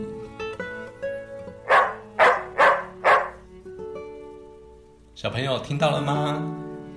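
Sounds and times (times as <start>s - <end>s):
soft steady musical backing: 0.0s - 6.9s
dog barking: 1.6s - 3.4s
speech: 5.2s - 6.6s.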